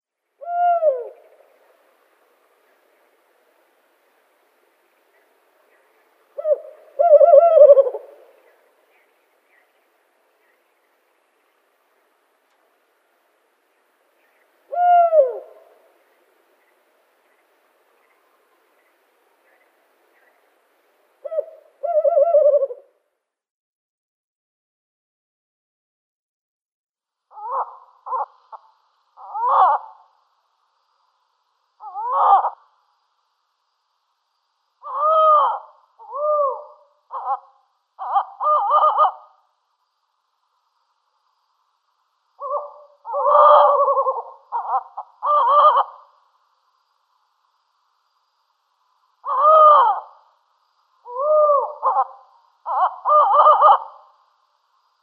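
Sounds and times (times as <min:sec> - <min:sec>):
Tawny Owl mauritanica display call: 0:00.4 - 0:02.0, 0:05.1 - 0:09.8, 0:13.8 - 0:20.5, 0:21.2 - 0:22.9, 0:27.3 - 0:30.2, 0:31.8 - 0:32.8, 0:34.8 - 0:39.6, 0:42.4 - 0:46.4, 0:49.2 - 0:50.4, 0:51.0 - 0:54.3.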